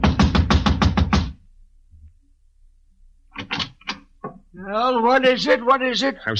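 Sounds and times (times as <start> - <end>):
firm heavy knocking on an apartment door: 0.0 - 1.4
speech: 4.6 - 6.3.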